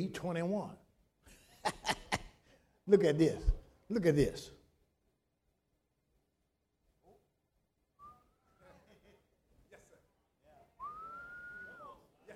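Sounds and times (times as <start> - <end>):
speech: 0.0 - 0.8, 1.6 - 2.0, 2.9 - 4.6
people chuckling lightly: 1.5 - 2.4, 8.6 - 10.1
person whistling two clear sustained tones: 8.0 - 8.6, 10.8 - 12.0.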